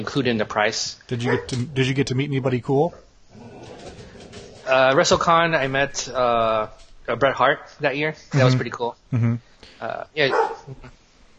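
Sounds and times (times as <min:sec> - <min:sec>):
speech: 0:00.0 - 0:03.5, 0:04.7 - 0:11.0
dog barking: 0:01.2 - 0:01.6, 0:10.3 - 0:10.7.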